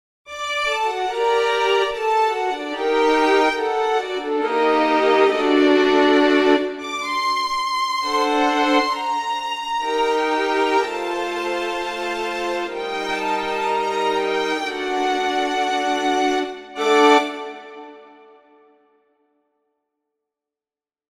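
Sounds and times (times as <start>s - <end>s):
violins playing: 0.3s - 18.5s.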